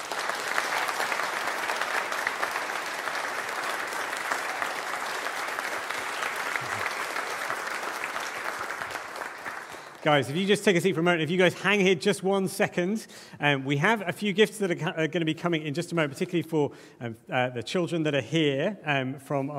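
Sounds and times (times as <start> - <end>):
large audience applause: 0.0 - 10.8
speech: 10.0 - 19.5.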